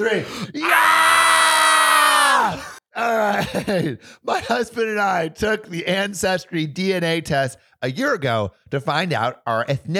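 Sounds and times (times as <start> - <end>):
speech: 0.0 - 0.9, 2.4 - 9.9
several voices screaming together high-pitched: 0.6 - 2.8.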